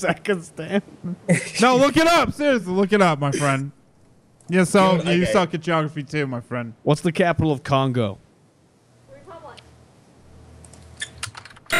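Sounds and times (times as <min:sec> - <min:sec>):
speech: 0:00.0 - 0:03.8, 0:04.5 - 0:08.2
typing on a computer keyboard: 0:10.7 - 0:11.7.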